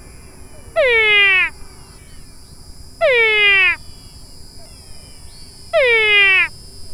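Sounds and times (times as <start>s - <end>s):
Physalaemus biligonigerus calls: 0.5s - 1.6s, 3.0s - 6.6s.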